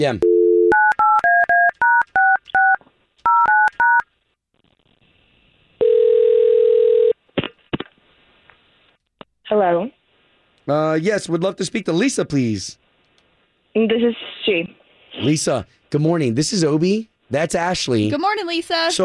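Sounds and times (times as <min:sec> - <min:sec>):
speech: 0:00.0 - 0:00.3, 0:10.7 - 0:12.8, 0:13.8 - 0:19.0
telephone dial tone: 0:00.2 - 0:01.5, 0:05.8 - 0:07.2
phone ringing tone: 0:00.2 - 0:04.0, 0:05.8 - 0:07.2.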